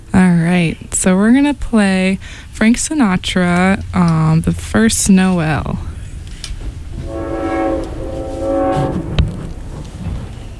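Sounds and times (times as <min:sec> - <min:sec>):
low rumble of rolling train cars: 0:00.0 - 0:10.5
speech: 0:00.5 - 0:05.9
passing train horn blast: 0:06.9 - 0:09.8.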